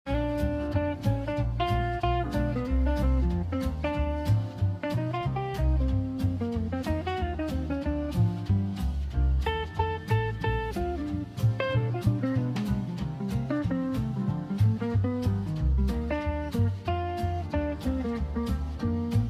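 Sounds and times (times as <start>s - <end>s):
new year music: 0.1s - 19.2s.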